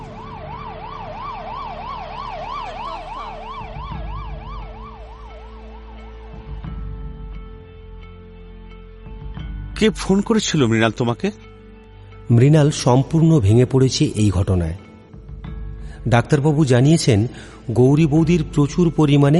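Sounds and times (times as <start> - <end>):
low rumble of road traffic: 0.0 - 6.7
ambulance siren wailing: 0.0 - 7.5
speech: 9.8 - 11.5, 12.3 - 14.9, 16.0 - 19.3.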